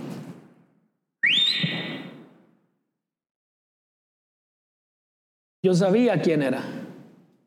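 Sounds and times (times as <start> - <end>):
person whistling to call someone: 1.2 - 2.1
speech: 5.6 - 6.8.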